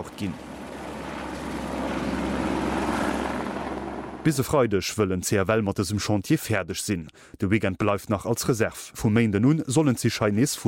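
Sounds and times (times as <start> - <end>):
helicopter rotor and engine droning overhead: 0.0 - 4.7
speech: 0.1 - 0.5, 4.2 - 10.6.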